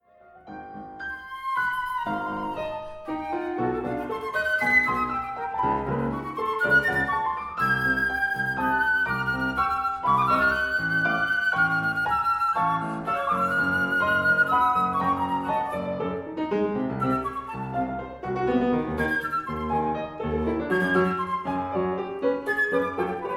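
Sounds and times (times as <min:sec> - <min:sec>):
piano in a duo sonata: 0:00.0 - 0:23.3
flute in a duo sonata: 0:00.4 - 0:23.3.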